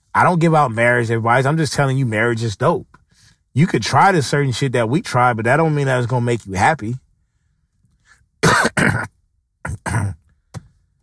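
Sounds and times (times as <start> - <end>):
speech: 0.2 - 3.0, 3.6 - 7.0, 8.7 - 9.1
person coughing: 8.4 - 9.1, 9.7 - 10.2.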